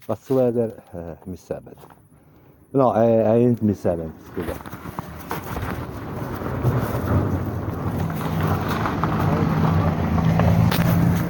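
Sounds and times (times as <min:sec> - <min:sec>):
speech: 0:00.0 - 0:02.0, 0:02.7 - 0:05.0
car passing by: 0:05.5 - 0:11.2.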